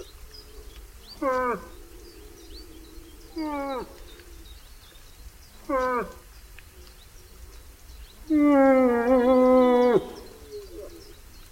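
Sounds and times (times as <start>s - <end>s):
moose calling: 1.1s - 4.5s, 5.6s - 6.8s, 8.2s - 11.4s.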